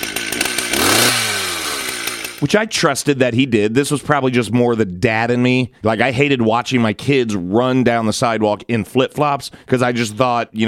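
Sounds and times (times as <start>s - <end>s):
chainsaw revving: 0.0s - 2.9s
speech: 2.4s - 10.6s.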